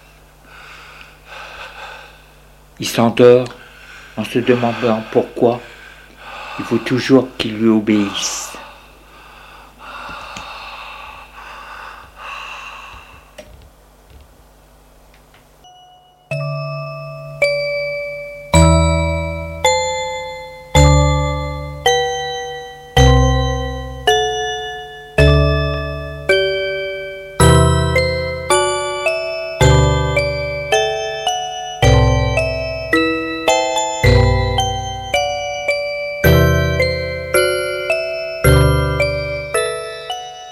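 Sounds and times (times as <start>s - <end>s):
speech: 2.8s - 3.6s, 4.2s - 5.7s, 6.6s - 8.4s
phone ringing with a melodic chime-like ringtone: 15.7s - 40.4s.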